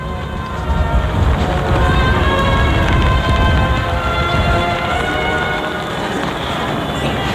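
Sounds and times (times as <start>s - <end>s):
steady rain pouring: 0.0s - 7.3s
strong wind rushing: 0.0s - 7.3s.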